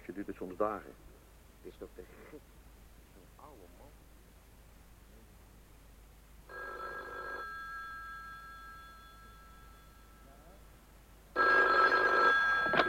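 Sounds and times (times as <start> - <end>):
speech: 0.2 - 2.6
telephone ringing: 6.5 - 10.3, 11.3 - 12.8.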